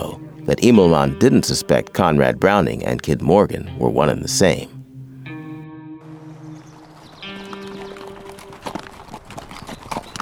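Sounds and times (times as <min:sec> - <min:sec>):
speech: 0:00.0 - 0:04.8
horses' hooves clip-clopping as riders leave a trading post: 0:06.9 - 0:10.1.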